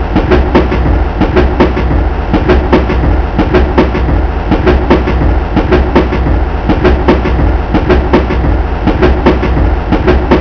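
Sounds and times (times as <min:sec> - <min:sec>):
rail clack: 0:00.0 - 0:10.3.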